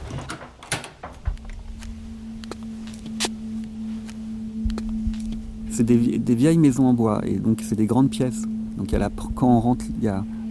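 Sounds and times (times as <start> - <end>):
door being opened: 0.0 - 2.1
sharp clicks and knocks: 0.0 - 2.6
steady low drone or rumble: 1.2 - 10.5
speech: 5.8 - 10.5.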